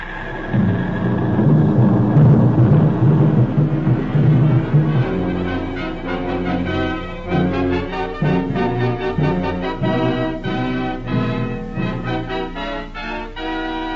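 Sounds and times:
drone of Japanese aircraft engines: 0.0 - 13.9
bombs dropped by Japanese planes exploding on Pearl Harbor: 0.3 - 11.5.

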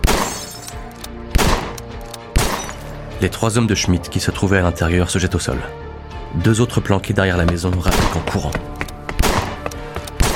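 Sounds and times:
gunshots fired through a door and windows: 0.0 - 0.7, 1.3 - 2.8, 7.9 - 8.4, 9.2 - 10.3
speech: 3.2 - 8.8.

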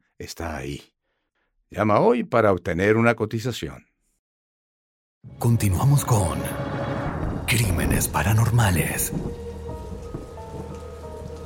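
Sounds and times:
speech: 0.2 - 0.9, 1.7 - 3.9, 5.2 - 6.6, 7.5 - 9.4
rain falling across a city at night: 5.9 - 11.4.

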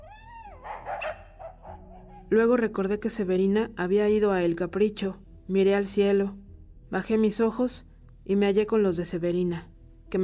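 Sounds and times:
dogs barking and yelping at night: 0.0 - 2.3
speech: 2.3 - 10.2.

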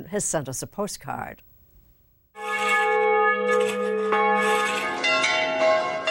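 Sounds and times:
speech: 0.0 - 1.5
church bells ringing on Easter Sunday morning in Vignone Molise Italy: 2.4 - 6.0.

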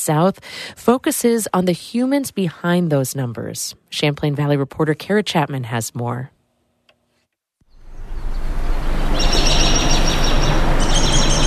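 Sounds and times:
speech: 0.0 - 6.4
birds chirping in chorus: 7.7 - 11.4.

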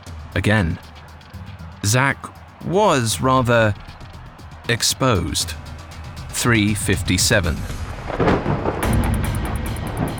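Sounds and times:
speech: 0.4 - 0.9, 1.8 - 3.9, 4.7 - 5.7, 6.4 - 7.8
thunder rumbling from an approaching storm: 7.6 - 10.1.

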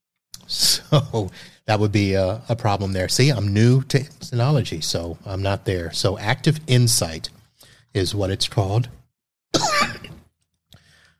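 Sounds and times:
speech: 0.5 - 9.0
loud raspy cough: 9.6 - 10.2
softer cough or throat clearing: 9.6 - 10.2.

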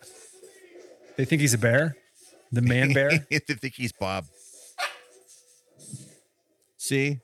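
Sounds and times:
speech: 1.2 - 4.4, 6.9 - 7.2
dog barking: 4.8 - 5.2.

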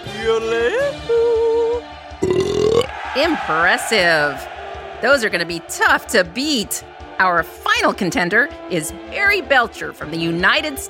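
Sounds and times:
speech: 0.2 - 1.4, 3.2 - 10.8
loud drawn-out burps: 2.2 - 2.9.

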